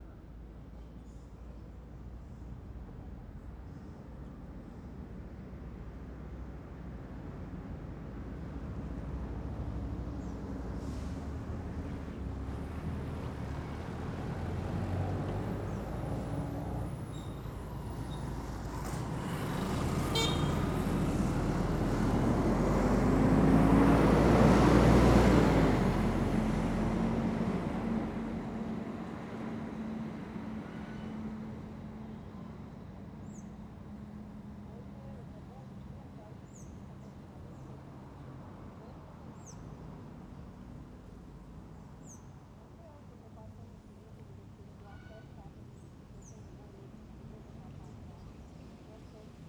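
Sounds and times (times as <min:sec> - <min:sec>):
truck passing: 0:09.9 - 0:33.1
motorcycle passing: 0:18.2 - 0:26.2
motorcycle horn honking: 0:20.1 - 0:20.8.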